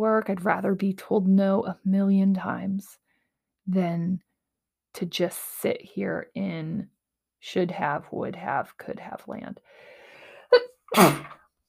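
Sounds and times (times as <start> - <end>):
speech: 0.0 - 3.0, 3.7 - 4.3, 5.0 - 9.9, 10.5 - 11.4
person sneezing: 10.9 - 11.4.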